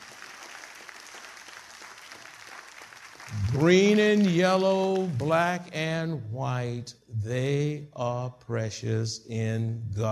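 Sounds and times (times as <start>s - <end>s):
audience applauding: 0.0s - 5.6s
speech: 3.3s - 10.1s.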